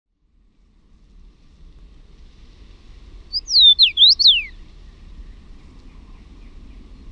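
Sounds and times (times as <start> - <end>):
common rosefinch song: 3.2 - 7.1.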